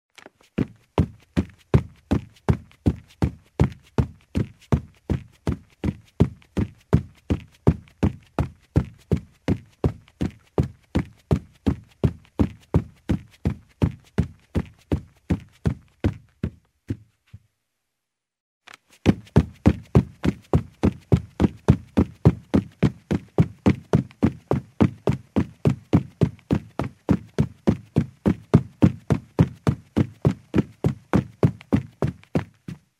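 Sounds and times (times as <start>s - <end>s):
running in shoes on a carpeted wooden floor: 0.2s - 17.6s, 18.7s - 32.9s.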